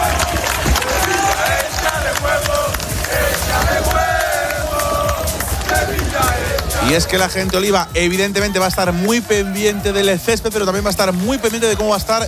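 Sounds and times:
football fans shouting: 0:00.0 - 0:12.2
large crowd of football fans cheering and chanting: 0:00.0 - 0:12.2
speech: 0:06.9 - 0:12.2.

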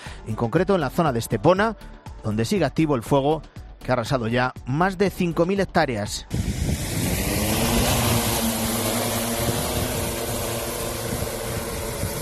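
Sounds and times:
speech: 0:00.2 - 0:06.5
remotely piloted aircraft engine droning over a wildfire at night: 0:06.3 - 0:12.2.

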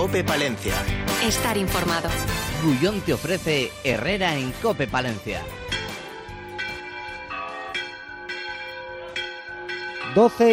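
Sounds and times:
speech: 0:00.0 - 0:05.6, 0:10.1 - 0:10.5
church bells ringing in the bell tower of Palencia Cathedral: 0:05.6 - 0:10.5.

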